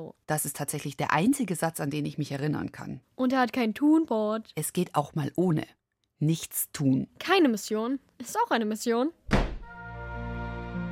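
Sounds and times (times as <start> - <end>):
speech: 0.0 - 9.4
single heavy thud: 9.3 - 9.7.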